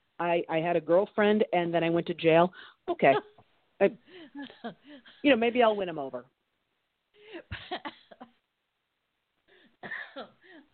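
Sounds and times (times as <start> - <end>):
speech: 0.2 - 6.4, 9.8 - 10.7
harsh coughing after laughing: 9.8 - 10.4.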